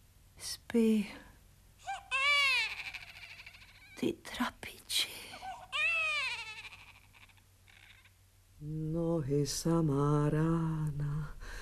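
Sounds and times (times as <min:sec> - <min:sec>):
speech: 0:00.4 - 0:01.2, 0:04.0 - 0:04.5, 0:08.6 - 0:11.4
faint sobbing of a child: 0:01.8 - 0:04.0, 0:05.3 - 0:08.2
child wailing: 0:01.9 - 0:04.0, 0:05.4 - 0:08.2.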